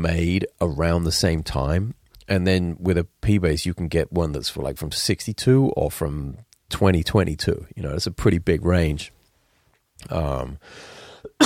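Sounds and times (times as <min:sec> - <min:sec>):
speech: 0:00.0 - 0:09.2, 0:10.0 - 0:11.4
catch of breath: 0:10.6 - 0:11.3
harsh cough: 0:11.3 - 0:11.4.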